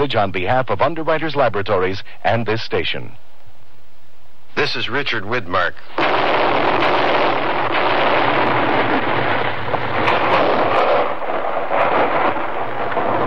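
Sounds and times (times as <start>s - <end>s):
speech: 0.0s - 3.3s, 4.6s - 6.6s
blank artillery shells fired to trigger an avalanche in the Rocky Mountains: 5.9s - 13.2s.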